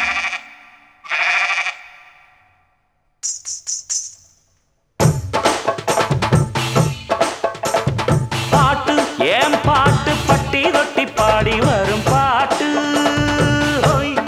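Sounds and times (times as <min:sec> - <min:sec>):
sheep bleating: 0:00.0 - 0:02.3
loud busy music: 0:05.0 - 0:14.2.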